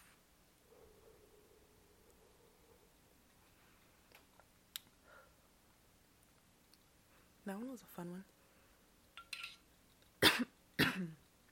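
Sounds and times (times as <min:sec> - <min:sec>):
speech: 0:07.5 - 0:08.4, 0:11.0 - 0:11.2
harsh coughs after smoking cannabis: 0:10.2 - 0:11.2.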